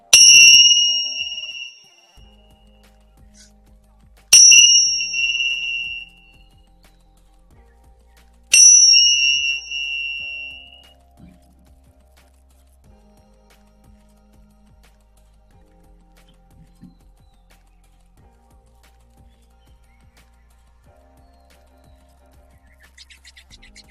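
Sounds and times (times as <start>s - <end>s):
Tibetan bell rung during an energy-healing session: 0.0s - 2.2s, 4.3s - 6.2s, 8.5s - 10.8s.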